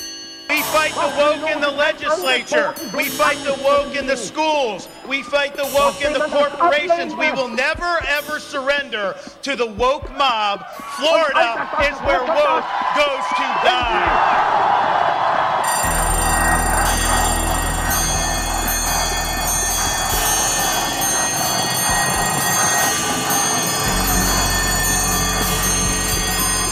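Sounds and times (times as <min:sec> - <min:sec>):
alarm clock ringing: 0:00.0 - 0:08.2, 0:15.6 - 0:26.7
speech: 0:00.8 - 0:15.1
laughter: 0:11.1 - 0:15.7.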